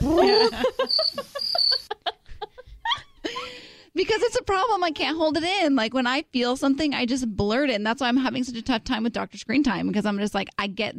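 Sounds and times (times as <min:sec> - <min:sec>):
snickering laughter: 0:00.0 - 0:03.5
scattered giggles: 0:00.0 - 0:03.6
crickets chirping: 0:00.2 - 0:02.0
speech: 0:00.8 - 0:01.4, 0:04.5 - 0:10.9.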